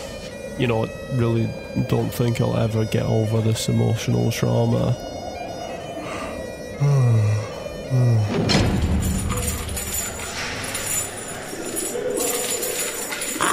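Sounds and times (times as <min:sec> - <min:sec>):
pigeons cooing: 0:00.0 - 0:13.5
speech: 0:00.6 - 0:05.1, 0:06.8 - 0:07.3, 0:07.9 - 0:08.6
rustling and fluttering: 0:09.2 - 0:13.5.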